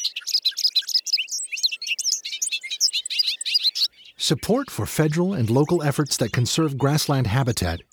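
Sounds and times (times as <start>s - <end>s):
bobolink singing a bubbling stream of tinkling notes: 4.2s - 7.9s
speech: 4.3s - 7.9s.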